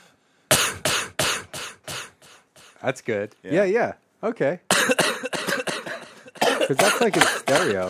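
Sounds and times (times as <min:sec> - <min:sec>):
harsh coughs into a microphone: 0:00.5 - 0:02.4, 0:04.7 - 0:07.8
speech: 0:02.8 - 0:05.4, 0:06.7 - 0:07.8.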